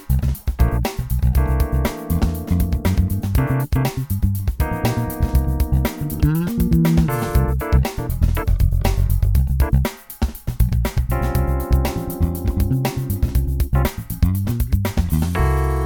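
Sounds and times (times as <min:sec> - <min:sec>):
muted 1960s vintage five-string bass guitar: 0:00.1 - 0:09.8, 0:10.7 - 0:15.8.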